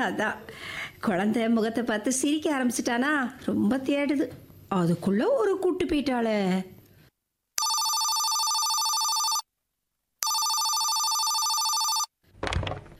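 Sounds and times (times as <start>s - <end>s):
speech: 0.0s - 6.8s
telephone ringback tone of an outgoing call: 7.6s - 9.5s, 10.2s - 12.1s.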